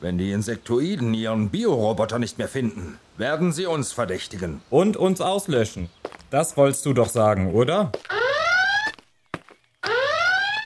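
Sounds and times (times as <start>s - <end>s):
speech: 0.0s - 8.2s
alarm siren wailing in rising sweeps: 8.1s - 9.0s, 9.8s - 10.6s.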